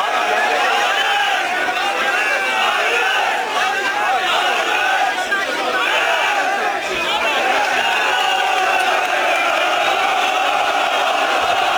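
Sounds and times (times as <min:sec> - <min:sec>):
football fans chanting and shouting at an airport in Istanbul: 0:00.0 - 0:11.7.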